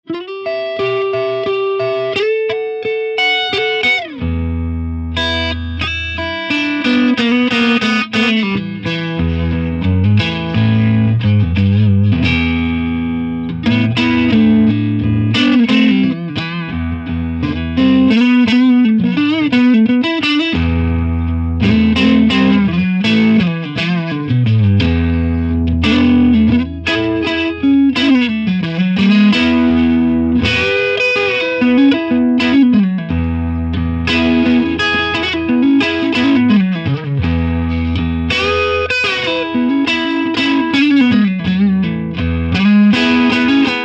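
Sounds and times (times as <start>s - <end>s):
G5 EL34 tube amp crunch: 0.3s - 43.8s.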